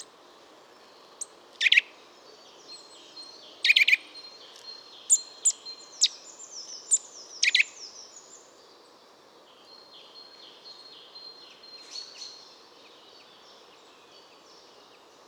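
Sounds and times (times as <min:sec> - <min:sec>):
Eurasian nuthatch calling: 0:01.2 - 0:01.9, 0:03.6 - 0:04.0, 0:06.9 - 0:07.7.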